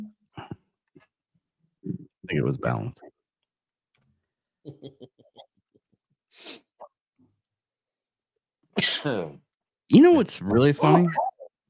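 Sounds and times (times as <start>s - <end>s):
speech: 2.4s - 3.1s, 4.6s - 5.3s, 9.0s - 11.3s
person sneezing: 8.8s - 9.3s.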